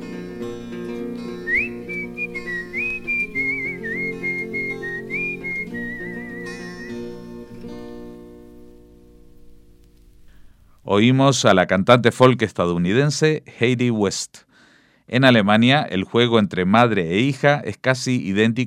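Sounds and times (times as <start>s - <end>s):
steady instrumental accompaniment: 0.0s - 10.2s
person whistling a short wavering melody: 1.4s - 7.0s
speech: 10.9s - 14.5s, 15.1s - 18.6s.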